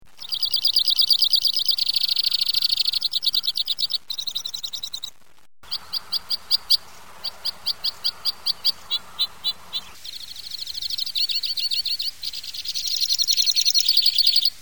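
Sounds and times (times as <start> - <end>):
Loxia leucoptera calling: 0.2 - 14.6.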